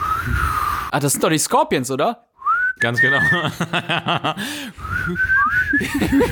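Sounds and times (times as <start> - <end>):
person whistling a wavering melody imitating a draught: 0.0 - 0.9, 2.4 - 3.5, 4.8 - 6.3
speech: 0.2 - 6.3
laughter: 3.0 - 4.7, 5.7 - 6.3.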